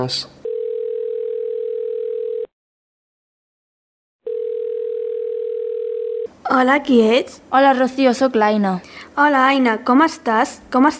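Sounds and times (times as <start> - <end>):
speech: 0.0 - 0.4, 6.5 - 10.9
steady single-pitched telephone dial tone while phoning a friend: 0.4 - 2.5, 4.3 - 6.3.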